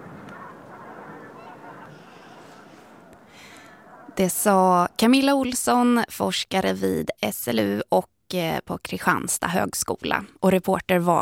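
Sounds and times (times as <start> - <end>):
flock of geese honking: 0.0 - 5.0
speech: 4.2 - 11.2.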